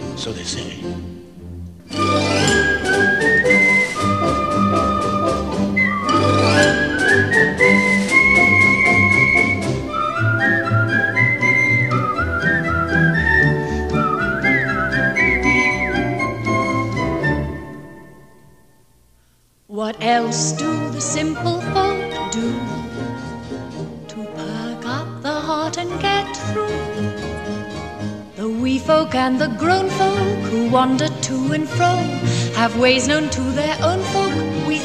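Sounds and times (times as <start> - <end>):
full instrumental accompaniment: 0.0 - 19.1, 19.7 - 34.8
speech: 0.2 - 1.2, 1.9 - 2.5, 30.7 - 34.8
person whistling a lilting tune: 1.9 - 18.0.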